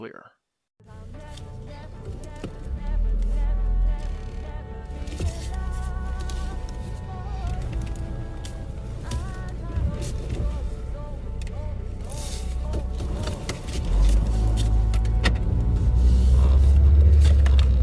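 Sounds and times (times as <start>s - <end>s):
person talking: 0.0s - 0.4s
car driving: 0.8s - 17.8s.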